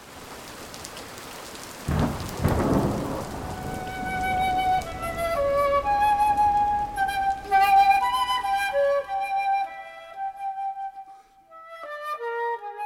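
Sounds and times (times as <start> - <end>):
steady rain hissing: 0.0 - 11.6
heavy thunder rumbling: 1.8 - 9.4
thin sustained whistling tones: 3.8 - 12.8.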